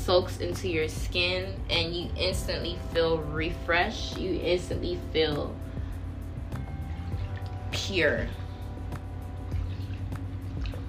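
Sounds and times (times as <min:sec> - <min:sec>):
speech: 0:00.1 - 0:05.7, 0:07.8 - 0:08.4
water drips plopping: 0:06.6 - 0:10.8
water pouring: 0:06.9 - 0:07.8, 0:09.4 - 0:10.8.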